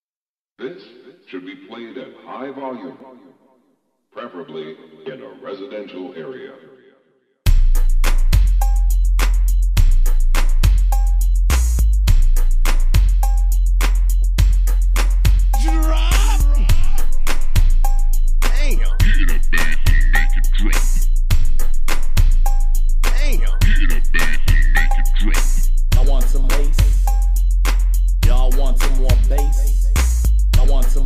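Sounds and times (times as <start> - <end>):
bass boosted music: 7.5 - 31.0.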